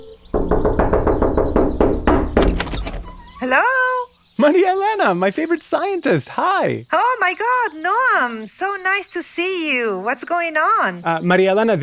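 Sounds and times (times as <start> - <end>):
firm knocking on a door: 0.3 - 3.4
speech: 3.5 - 3.8, 4.4 - 11.8.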